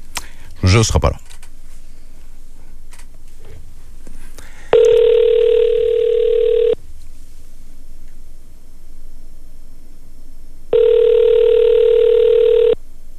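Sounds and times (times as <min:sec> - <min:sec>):
speech: 0:00.7 - 0:01.3
telephone ringback tone while placing an outgoing call: 0:04.7 - 0:06.8, 0:10.7 - 0:12.8.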